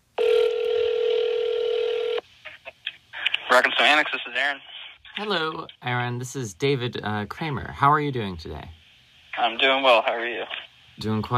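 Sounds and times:
phone line ringing through the earpiece: 0:00.2 - 0:02.2
speech: 0:03.6 - 0:08.8, 0:09.4 - 0:11.3.

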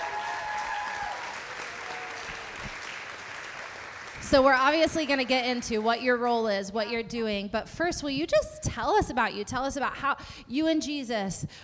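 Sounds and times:
audience applause: 0:00.0 - 0:05.4
speech: 0:04.3 - 0:11.6.

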